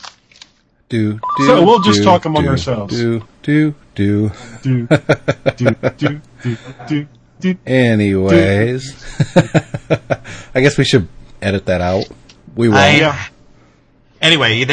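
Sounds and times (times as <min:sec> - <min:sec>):
speech: 0:00.9 - 0:13.3, 0:14.2 - 0:14.7
phone ringing with a melodic ringtone: 0:01.2 - 0:02.1
laughter: 0:04.3 - 0:07.0, 0:08.3 - 0:10.5.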